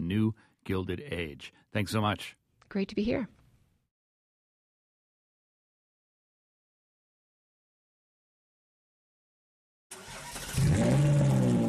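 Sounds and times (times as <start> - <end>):
speech: 0.1 - 3.4
Ferrari sports car engine starting on a street and revving: 9.9 - 11.6.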